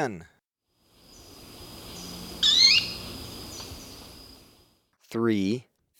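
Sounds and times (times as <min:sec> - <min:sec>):
speech: 0:00.0 - 0:00.3, 0:05.1 - 0:05.7
Jet manakin buzzy wavering note in Ecuador: 0:01.9 - 0:03.7.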